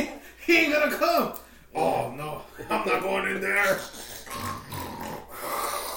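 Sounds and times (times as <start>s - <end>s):
speech: 0.5s - 4.6s
person imitating loud snoring: 3.8s - 5.9s.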